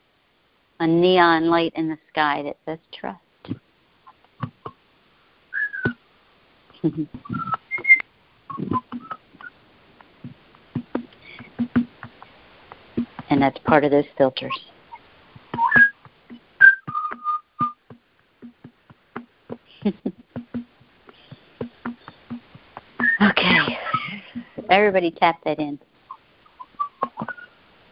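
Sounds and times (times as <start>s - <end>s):
speech: 0.8s - 3.6s, 6.8s - 7.6s, 8.6s - 9.1s, 13.3s - 14.7s, 19.9s - 20.1s, 24.7s - 25.9s
young butcherbird whistling: 5.5s - 6.0s, 7.2s - 9.5s, 14.9s - 16.0s, 16.6s - 17.8s, 23.0s - 23.2s, 26.1s - 27.5s
sharp tapping clicks: 7.1s - 13.6s, 15.4s - 23.2s.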